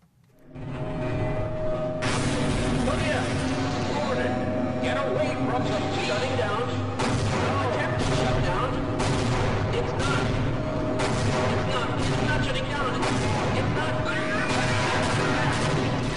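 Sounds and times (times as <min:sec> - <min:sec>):
heavy first-person shooter video game explosions: 0:00.6 - 0:16.1
first-person shooter video game gunfire: 0:07.0 - 0:16.1.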